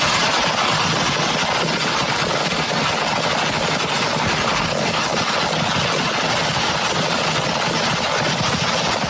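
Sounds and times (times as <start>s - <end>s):
fireworks bursting and crackling as a fire burns through a fireworks stand: 0.0s - 9.0s.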